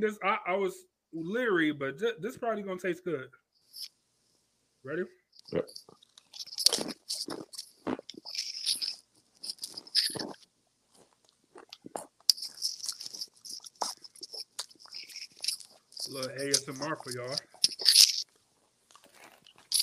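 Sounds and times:
speech: 0.0 - 4.0, 4.8 - 8.0, 16.1 - 17.5
crunching and chewing a seaweed snack made in China: 5.4 - 19.8.

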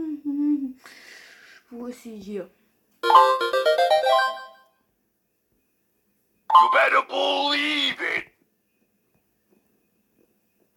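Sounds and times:
speech: 1.7 - 3.2, 6.9 - 8.2
short melodic electronic ringtone: 3.0 - 4.7, 6.5 - 6.9.

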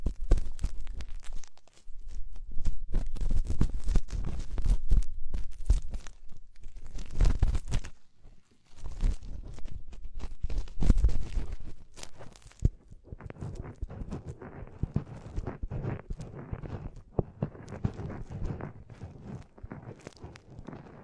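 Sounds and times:
dense crackling, rubbing and crunching of deep ear cleaning and massage: 0.0 - 21.0
steady scratchy rustle: 0.0 - 21.0.

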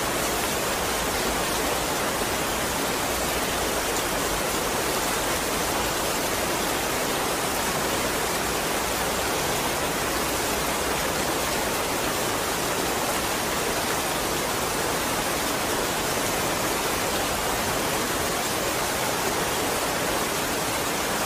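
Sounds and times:
heavy rain pouring: 0.0 - 21.2.

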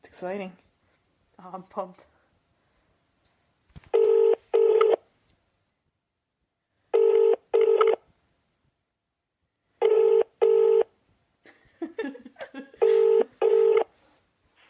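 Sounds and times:
speech: 0.2 - 0.6, 1.4 - 2.2
telephone dialing tones from a call being placed: 4.0 - 5.0, 7.0 - 8.0, 9.8 - 10.9, 13.0 - 13.9.

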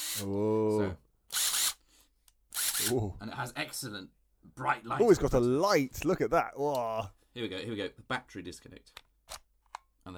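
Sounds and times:
small cordless screwdriver drill whirring: 0.0 - 0.3, 1.3 - 1.8, 2.5 - 2.9
speech: 0.2 - 1.0, 2.9 - 9.0.

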